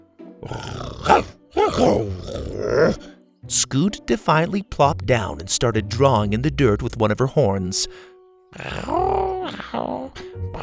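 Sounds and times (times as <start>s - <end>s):
voice imitating a young dinosaur growling: 0.4s - 3.2s, 8.6s - 10.6s
speech: 0.4s - 10.6s.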